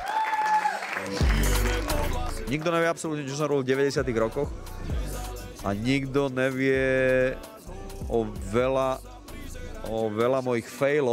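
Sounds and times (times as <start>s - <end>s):
audience applauding after a film screening: 0.0s - 2.6s
speech: 1.0s - 1.5s, 2.4s - 5.0s, 5.6s - 7.5s, 8.1s - 9.1s, 9.8s - 11.1s.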